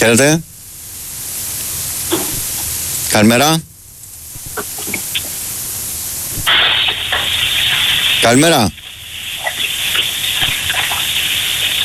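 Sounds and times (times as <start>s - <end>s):
speech: 0.0s - 0.5s, 3.1s - 3.7s, 8.2s - 8.8s
water running steadily from a bathroom tap: 6.6s - 11.8s.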